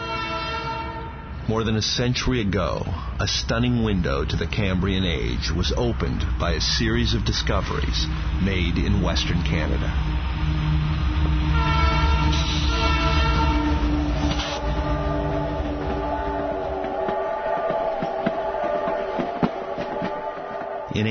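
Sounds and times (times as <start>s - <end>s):
steam train whistle: 0.0s - 1.2s, 11.4s - 20.9s
steam train rumbling along railroad tracks: 0.0s - 21.1s
speech: 1.5s - 10.3s, 21.0s - 21.1s.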